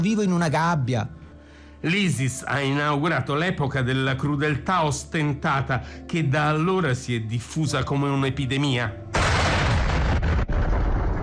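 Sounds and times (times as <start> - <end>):
speech: 0.0 - 1.2, 1.8 - 9.1
Russian bombs exploding on a theatre in Mariupol: 9.1 - 11.2.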